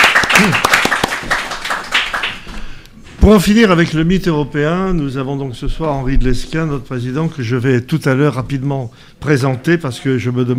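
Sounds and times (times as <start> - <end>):
crowd applauding: 0.0 - 2.8
speech: 0.4 - 0.6, 3.2 - 10.5.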